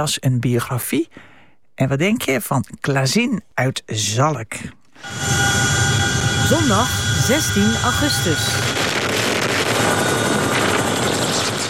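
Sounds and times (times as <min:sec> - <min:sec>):
speech: 0:00.0 - 0:05.8, 0:06.5 - 0:08.8
Chinook helicopter rotors and engines roaring while fighting a wildfire: 0:05.0 - 0:11.6.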